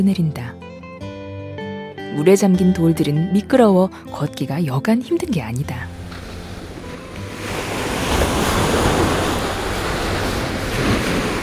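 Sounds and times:
speech: 0.0 - 0.6, 2.1 - 5.9
surf crashing: 5.8 - 11.4
strong sea wind: 6.4 - 11.4.

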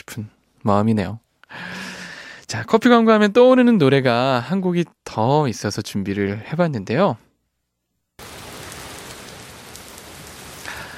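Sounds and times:
speech: 0.2 - 1.7, 2.5 - 7.3
heavy rain pouring down in a sudden shower: 8.2 - 10.9.

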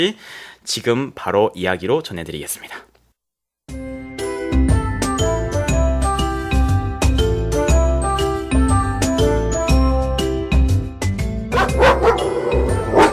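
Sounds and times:
speech: 0.0 - 2.9
tonal music with tinkling bell-like accents: 3.7 - 13.1
large Tibetan Mastiff barking in deep loud bursts: 11.5 - 13.1.

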